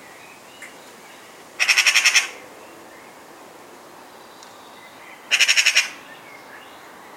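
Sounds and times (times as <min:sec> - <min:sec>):
Eurasian magpie Pica pica harsh chatter: 0:01.6 - 0:02.4, 0:05.3 - 0:06.0.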